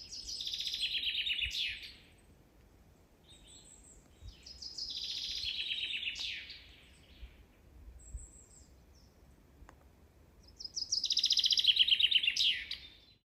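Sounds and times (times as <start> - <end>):
Common chaffinch singing descending rattling phrases: 0.0 - 2.2, 3.2 - 7.4, 10.4 - 13.2.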